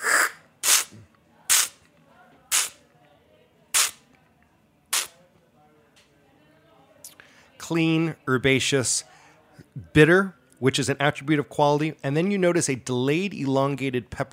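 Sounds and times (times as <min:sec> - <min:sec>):
olive oil sprayed through the mouth by strapaggio tasting: 0:00.0 - 0:01.8, 0:02.5 - 0:02.8, 0:03.7 - 0:04.0, 0:04.9 - 0:05.1
speech: 0:07.7 - 0:09.1, 0:09.8 - 0:14.3.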